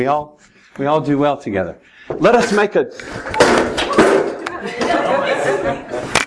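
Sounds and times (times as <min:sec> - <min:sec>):
speech: 0:00.0 - 0:03.9
laughter: 0:02.4 - 0:06.2
crowd chattering and murmuring: 0:03.2 - 0:06.2
object knocked over with clatter: 0:03.4 - 0:04.4.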